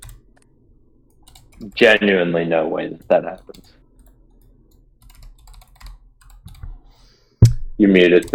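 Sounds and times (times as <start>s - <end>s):
typing on a computer keyboard: 0.0s - 0.4s, 1.1s - 1.9s, 3.4s - 6.7s, 8.2s - 8.3s
speech: 1.6s - 3.8s, 7.8s - 8.3s.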